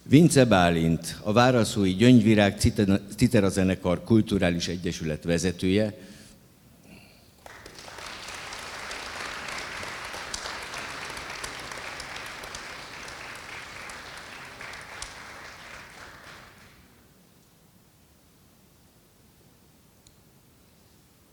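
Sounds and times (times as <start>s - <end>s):
speech: 0.1s - 6.1s
audience applause for zither orchestra members at an award presentation: 7.4s - 16.9s.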